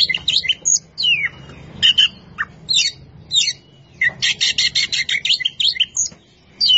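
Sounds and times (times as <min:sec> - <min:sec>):
Oriental magpie-robin singing sweet whistles and scratchy chirps: 0:00.0 - 0:06.7.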